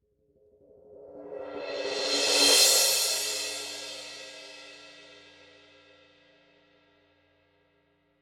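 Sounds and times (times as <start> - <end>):
crash cymbal roll: 1.6 - 5.1.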